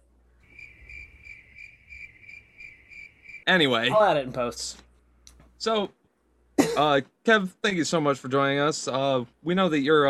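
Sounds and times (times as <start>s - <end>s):
crickets chirping sound effect: 0.4s - 3.5s
speech: 3.5s - 4.8s, 5.6s - 6.0s, 6.8s - 10.0s.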